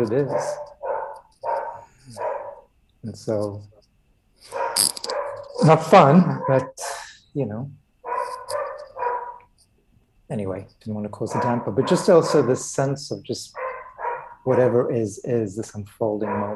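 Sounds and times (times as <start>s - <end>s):
speech: 0.0s - 0.7s, 3.0s - 3.8s, 4.4s - 4.6s, 5.6s - 7.8s, 10.3s - 13.6s, 14.4s - 16.5s
dogs barking: 0.0s - 2.7s, 4.5s - 6.8s, 8.0s - 9.5s, 11.2s - 15.0s, 16.1s - 16.5s.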